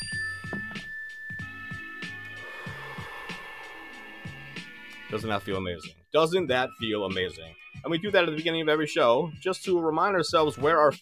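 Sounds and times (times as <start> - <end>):
mindfulness bell ringing with sustained tone: 0.0 - 2.5
soft breathy whooshes: 2.4 - 4.3
speech: 5.1 - 11.0.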